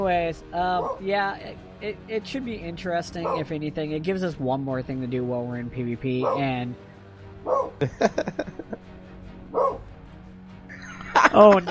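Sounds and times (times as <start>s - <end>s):
speech: 0.0s - 8.8s, 9.5s - 9.9s, 11.2s - 11.7s
female dog barking at a dog outside: 0.8s - 1.0s, 3.2s - 3.6s, 6.2s - 6.5s, 7.4s - 7.8s, 9.5s - 9.9s
laughter: 7.8s - 8.8s, 10.7s - 11.7s.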